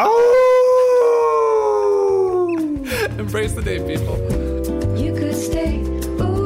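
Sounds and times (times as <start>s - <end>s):
person howling like a wolf: 0.0s - 2.8s
speech: 3.3s - 6.3s.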